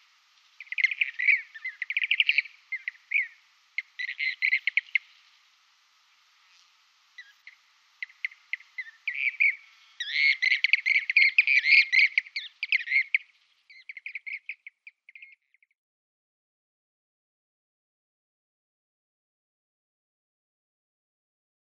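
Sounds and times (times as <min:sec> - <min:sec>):
blue-cheeked bee-eater rolling purring trills: 0:00.6 - 0:05.3, 0:06.5 - 0:15.3.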